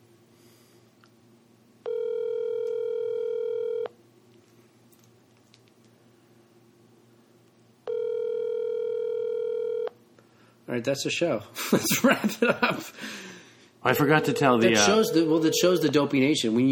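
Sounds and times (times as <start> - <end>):
outgoing phone call ring tones through the earpiece: 1.8 - 3.9, 7.9 - 9.9, 13.9 - 16.0
speech: 10.8 - 16.7
laughter: 11.6 - 13.0.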